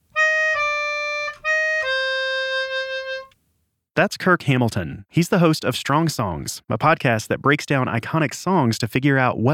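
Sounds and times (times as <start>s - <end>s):
melodica playing a slow four-note minor phrase: 0.1s - 3.4s
speech: 4.0s - 9.5s.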